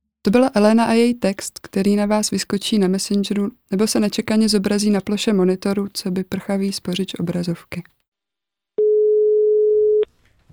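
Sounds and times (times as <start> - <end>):
speech: 0.2 - 8.0
telephone tone on the other end of a phone line: 8.8 - 10.1.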